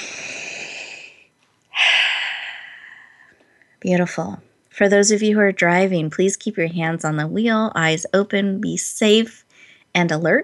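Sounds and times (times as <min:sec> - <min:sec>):
deep breath during a guided breathing exercise: 0:00.0 - 0:03.8, 0:09.5 - 0:09.9
speech: 0:03.8 - 0:10.4.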